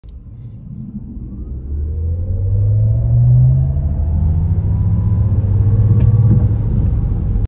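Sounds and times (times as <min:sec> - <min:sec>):
Maserati Grecale Folgore electric car: 0:00.2 - 0:07.4.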